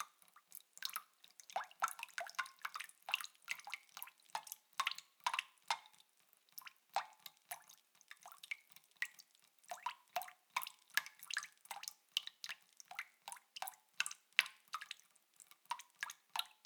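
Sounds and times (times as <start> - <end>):
water dripping into a bucket: 0.0 - 16.6.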